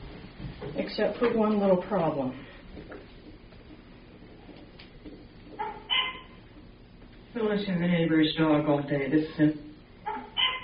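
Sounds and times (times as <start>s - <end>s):
speech: 0.8s - 2.5s, 7.4s - 9.7s
neighbor's dog barking heard from inside a closed house: 5.6s - 6.4s, 10.0s - 10.6s.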